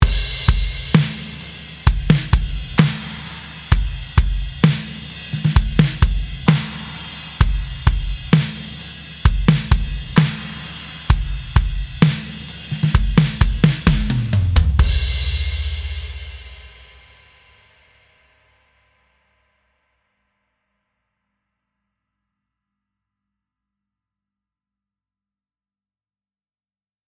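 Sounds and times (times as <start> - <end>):
big worship drums: 0.0 - 17.7.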